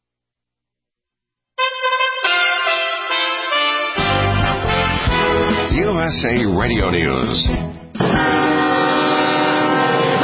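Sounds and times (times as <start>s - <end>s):
special train horn blaring in Texas: 1.6s - 5.9s, 8.0s - 10.2s
speech: 6.1s - 8.6s.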